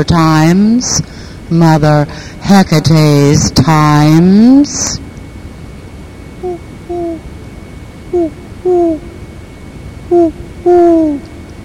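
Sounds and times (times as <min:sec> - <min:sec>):
speech: 0:00.0 - 0:05.0, 0:10.1 - 0:11.3
quiet hiss: 0:00.4 - 0:11.6
owls hooting in paired calls: 0:06.4 - 0:07.3, 0:08.1 - 0:09.3, 0:10.0 - 0:11.4.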